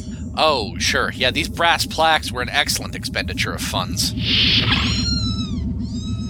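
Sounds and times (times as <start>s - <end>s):
steady pulsing low hum: 0.0s - 6.2s
speech: 0.4s - 4.9s
several kittens meowing: 4.2s - 6.2s.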